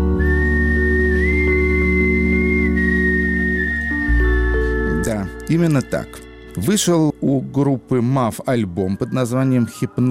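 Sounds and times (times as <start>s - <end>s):
whistled melody by a tenor saxophonist: 0.0s - 7.4s, 8.4s - 10.1s
instrumental backing of bass and accompaniment: 0.0s - 7.9s
speech: 5.5s - 10.1s.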